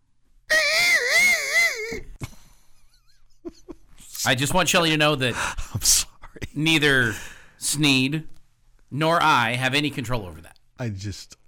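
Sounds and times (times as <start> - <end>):
owl screech: 0.5 - 2.0
speech: 4.2 - 6.0, 6.6 - 11.4.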